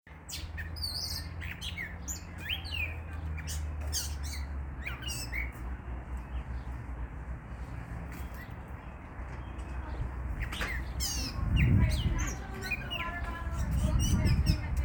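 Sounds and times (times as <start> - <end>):
gray catbird Dumetella carolinensis calling: 0.2 - 6.7, 8.2 - 14.7.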